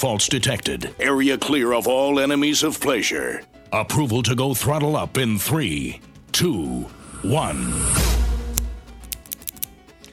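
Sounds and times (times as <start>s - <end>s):
speech: 0.0s - 8.1s
low rumble: 6.9s - 8.9s
cigar cutter clipping a Connecticut-wrapped cigar: 8.5s - 10.1s.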